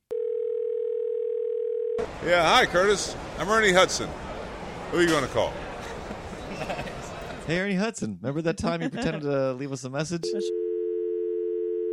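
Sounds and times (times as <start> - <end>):
telephone dial tone: 0.1 - 2.0, 10.4 - 11.9
speech: 2.0 - 4.3, 4.9 - 5.7, 7.5 - 10.5
laughter: 5.7 - 7.5, 8.6 - 9.4.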